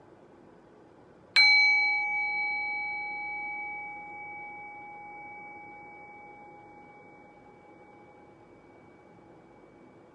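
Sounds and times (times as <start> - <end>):
meditation bell struck: 1.4 - 10.1.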